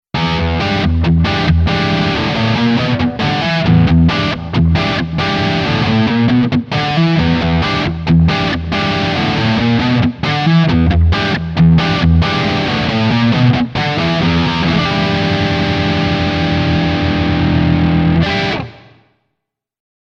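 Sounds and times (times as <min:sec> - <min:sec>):
Epiphone Les Paul 60s neck pickup high-gain electric guitar rhythm: 0:00.1 - 0:19.1.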